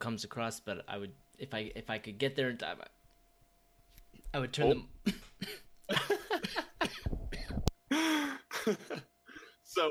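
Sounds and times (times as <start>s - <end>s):
speech: 0.0s - 3.0s, 4.3s - 7.2s, 8.0s - 9.1s
person in a loud coughing fit: 5.0s - 7.7s.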